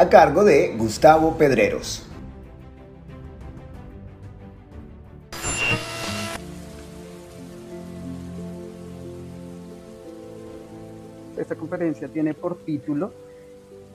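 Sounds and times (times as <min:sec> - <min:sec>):
speech: 0:00.0 - 0:02.1, 0:11.5 - 0:13.3
soft sustained musical tones: 0:05.4 - 0:13.9
steady rain falling: 0:06.3 - 0:13.9.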